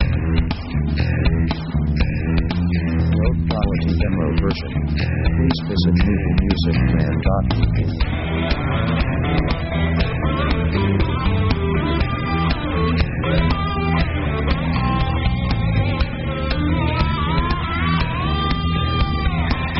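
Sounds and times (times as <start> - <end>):
dark heavy rock music at 120 bpm: 0.0 - 19.7.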